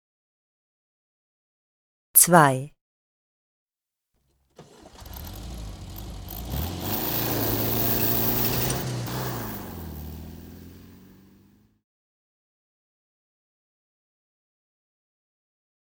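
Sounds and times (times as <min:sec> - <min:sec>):
speech: 0:02.2 - 0:02.7
car engine cranking, starting and revving: 0:04.6 - 0:11.8.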